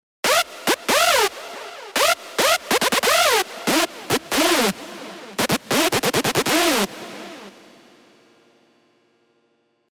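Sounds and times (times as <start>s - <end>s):
screech: 0.2s - 7.8s.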